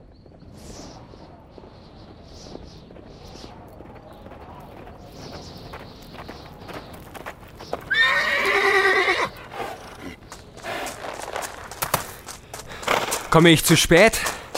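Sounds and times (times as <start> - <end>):
horse hooves clip-clopping at a quick trot: 0.0 - 14.5
horse giving a long loud shrill whinny: 7.9 - 10.2
speech: 13.4 - 14.3.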